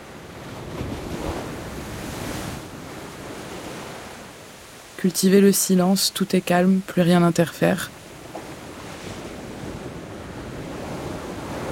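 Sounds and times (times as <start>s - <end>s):
ocean waves washing onto the shore: 0.0s - 11.7s
speech: 5.0s - 8.0s.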